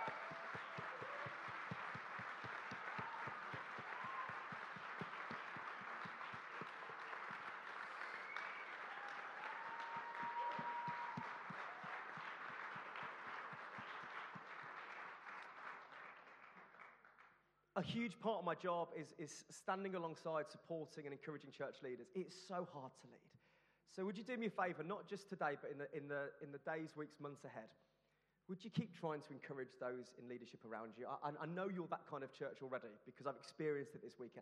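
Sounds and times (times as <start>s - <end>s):
faint whoops: 0.0s - 5.8s, 7.9s - 12.8s
crowd applauding church leaders: 0.0s - 17.4s
speech: 17.8s - 34.4s.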